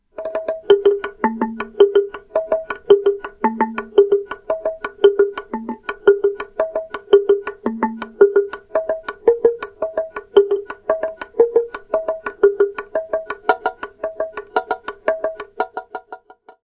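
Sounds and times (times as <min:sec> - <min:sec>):
log drum of oak and poplar: 0:00.1 - 0:16.6.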